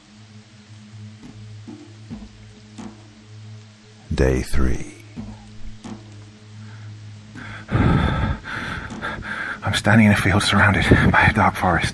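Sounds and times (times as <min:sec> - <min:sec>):
low steady drone: 0:00.0 - 0:11.8
speech: 0:04.2 - 0:05.0, 0:09.8 - 0:11.9
heavy ragged breathing: 0:06.6 - 0:09.7.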